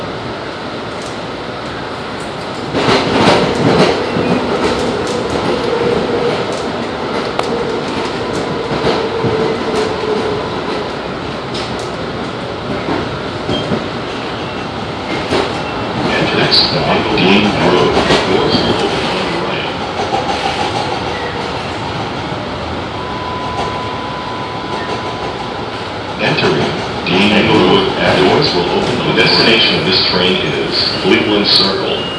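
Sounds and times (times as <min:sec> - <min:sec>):
light rail train rumbling, heard from inside the car: 0:00.0 - 0:32.1.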